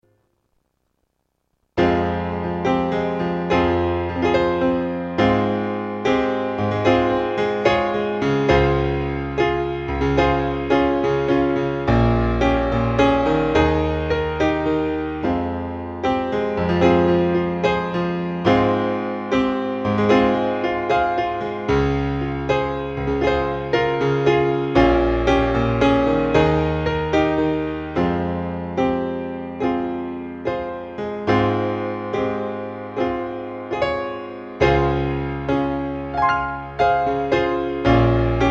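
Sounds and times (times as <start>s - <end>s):
piano: 1.8s - 38.4s.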